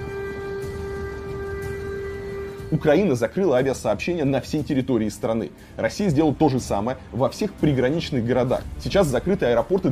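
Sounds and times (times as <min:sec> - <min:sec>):
air raid siren in a city: 0:00.0 - 0:03.3
speech: 0:02.7 - 0:09.9.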